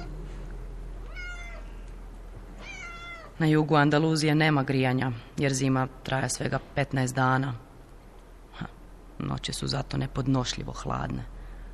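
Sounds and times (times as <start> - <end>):
steady low hum: 0.0 - 11.7
cats yowling as if fighting: 1.0 - 1.8, 2.6 - 3.4
speech: 3.4 - 7.6, 8.6 - 11.3.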